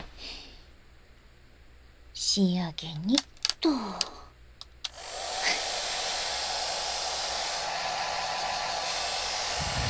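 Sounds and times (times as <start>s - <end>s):
speech: 2.4s - 4.2s
small clicks: 3.0s - 5.0s
hair dryer blowing with a loud broad whooshing roar: 4.7s - 9.8s.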